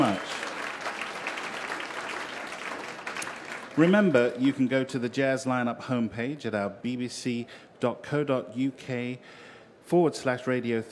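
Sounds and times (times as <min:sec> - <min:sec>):
audience applause: 0:00.0 - 0:04.7
speech: 0:03.8 - 0:10.9.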